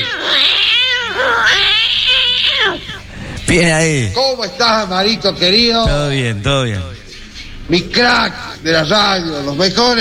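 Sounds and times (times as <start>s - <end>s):
cat meowing with drawn-out wavering cries: 0.0s - 3.0s
speech: 3.5s - 7.0s, 7.7s - 10.0s.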